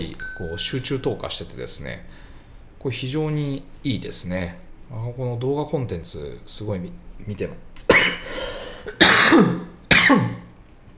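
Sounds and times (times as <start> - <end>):
speech: 0.0 - 8.1, 8.9 - 10.4
harsh loud coughs: 7.8 - 10.6.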